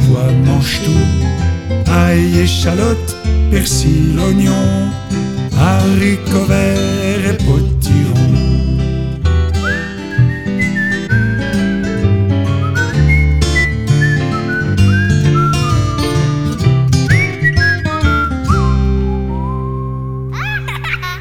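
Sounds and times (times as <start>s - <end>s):
speech: 0.1s - 8.5s
grandfather whistling a lively tune: 9.5s - 20.3s
laughter: 20.3s - 21.1s.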